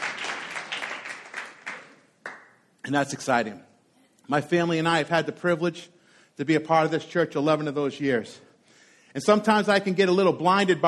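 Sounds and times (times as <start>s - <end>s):
church congregation applauding: 0.0s - 2.6s
speech: 2.9s - 3.7s, 4.3s - 8.5s, 9.2s - 10.8s.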